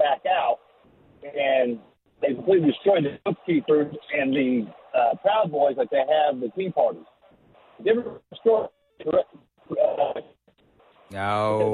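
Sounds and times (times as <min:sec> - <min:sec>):
speech: 0:01.6 - 0:01.9, 0:02.5 - 0:07.2, 0:07.8 - 0:10.3, 0:11.1 - 0:11.7
caller's voice breaking up over a narrow-band phone line: 0:11.1 - 0:11.7.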